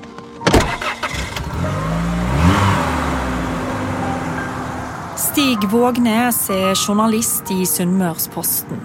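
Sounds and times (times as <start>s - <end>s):
journalist's car engine starting and pulling away toward Fjelltunvegen after a landslide: 0.5s - 7.1s
speech: 5.4s - 8.8s.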